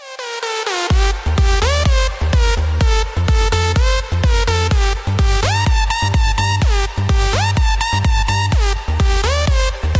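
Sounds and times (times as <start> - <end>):
music beat: 0.0 - 9.9.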